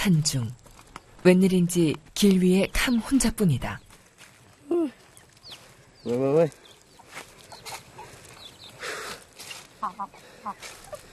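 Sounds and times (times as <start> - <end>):
speech: 0.0 - 0.6, 1.2 - 3.8, 6.0 - 6.6, 9.9 - 10.8
rustling noisy outdoor background: 0.0 - 11.1
chickens clucking: 4.4 - 11.1.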